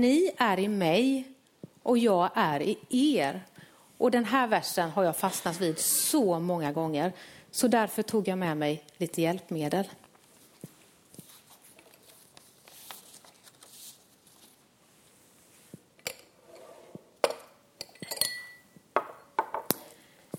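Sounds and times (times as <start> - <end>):
speech: 0.0 - 10.0
soft shuffling: 10.2 - 15.9
drinking glasses clinking as they are set down on a hard surface: 17.9 - 19.3.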